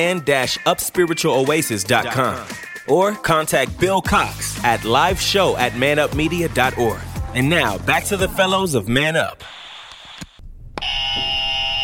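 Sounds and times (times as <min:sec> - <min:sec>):
speech: 0:00.0 - 0:09.6
loud game show buzzer: 0:10.8 - 0:11.8.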